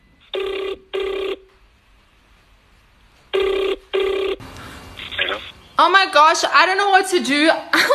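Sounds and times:
phone line ringing as a call goes out: 0.2 - 1.5, 3.4 - 4.4
speech: 5.8 - 7.9.

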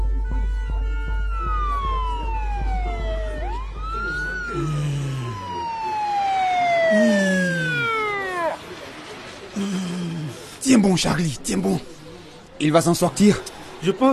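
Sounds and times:
ambulance siren wailing: 0.2 - 10.2
murmuring voices: 1.3 - 14.1
speech: 10.8 - 12.0, 12.6 - 14.1.

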